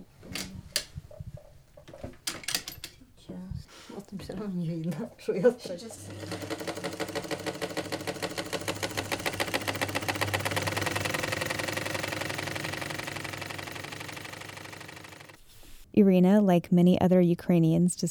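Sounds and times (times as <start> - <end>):
speech: 4.4 - 6.6, 16.0 - 18.0
sewing machine stitching fabric: 6.0 - 15.4.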